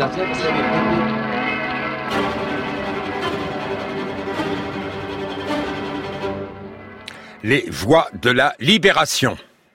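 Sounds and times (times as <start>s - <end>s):
speech: 0.0s - 1.2s, 2.1s - 2.4s, 7.4s - 9.5s
neighborhood church bells pealing: 0.0s - 6.2s.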